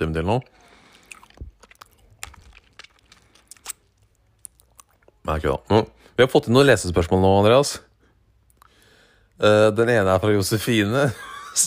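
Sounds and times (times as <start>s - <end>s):
speech: 0.0s - 0.6s, 5.3s - 7.9s, 9.4s - 11.6s
mouth smacks: 0.4s - 5.2s, 8.4s - 8.8s
person chewing a hard sweet: 0.4s - 5.2s, 8.4s - 9.0s.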